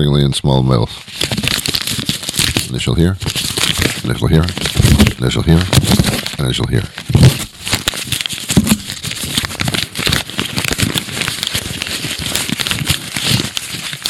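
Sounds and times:
speech: 0:00.0 - 0:01.3, 0:02.7 - 0:07.4
paper agreement being crumpled up: 0:00.8 - 0:14.0.

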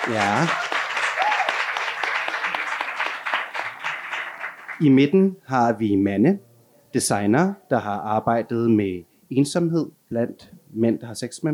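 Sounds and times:
speech: 0:00.0 - 0:00.8, 0:04.8 - 0:11.5
audience clapping: 0:00.0 - 0:05.0
person whooping in the crowd: 0:00.3 - 0:01.8.

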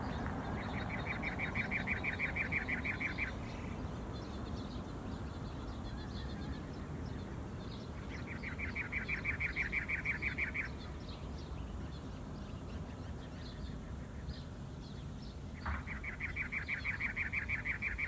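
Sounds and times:
steady outdoor hiss: 0:00.0 - 0:18.0
cactus wren giving harsh rapid grating chatter: 0:00.6 - 0:03.8, 0:08.1 - 0:10.9, 0:15.6 - 0:18.0.

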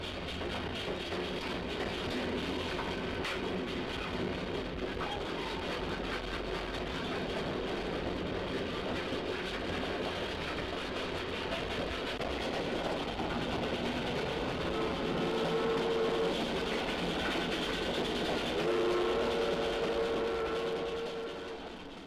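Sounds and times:
railroad engine pulling a train rumbling along the rails: 0:00.0 - 0:22.0
sustained horn-like tones of a railroad engine: 0:14.5 - 0:22.0.

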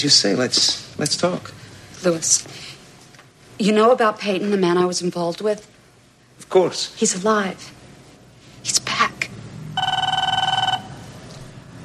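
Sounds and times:
speech: 0:00.0 - 0:02.7, 0:03.6 - 0:05.7, 0:06.4 - 0:07.8, 0:08.6 - 0:09.2
telephone ringing with bright warbling electronic tone: 0:09.8 - 0:11.1.

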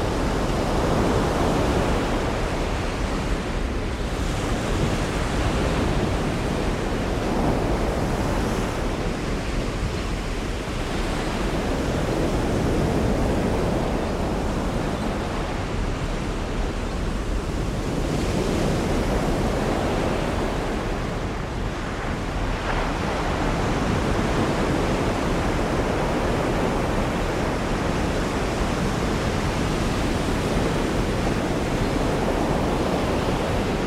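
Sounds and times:
rough sea waves pounding on the Amalfi coast: 0:00.0 - 0:33.8
wind: 0:00.0 - 0:33.8.

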